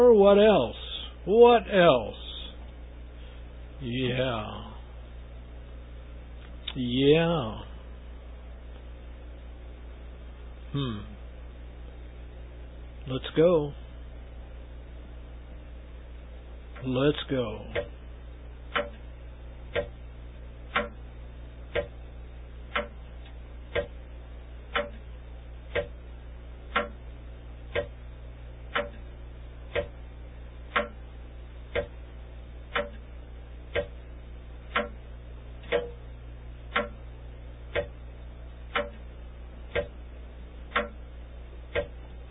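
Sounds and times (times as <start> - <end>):
speech: 0.0 - 2.2, 3.8 - 4.6, 6.8 - 7.7, 10.7 - 11.1, 13.0 - 13.8, 16.8 - 18.0, 18.8 - 19.0, 19.7 - 20.0
faint low hum: 0.0 - 42.3
clock ticking: 16.7 - 18.0, 18.7 - 19.1, 19.7 - 20.0, 20.7 - 21.0, 21.7 - 22.0, 22.7 - 24.0, 24.7 - 26.0, 26.7 - 27.1, 27.7 - 28.0, 28.6 - 30.0, 30.7 - 31.1, 31.7 - 32.0, 32.6 - 33.1, 33.7 - 36.0, 36.7 - 37.1, 37.7 - 38.0, 38.7 - 40.0, 40.6 - 41.0, 41.7 - 42.3.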